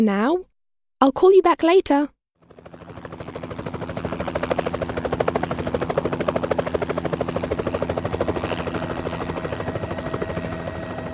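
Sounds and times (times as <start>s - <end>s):
speech: 0.0s - 2.2s
helicopter rotor thumping: 2.4s - 11.1s
faint high whine: 7.4s - 11.1s.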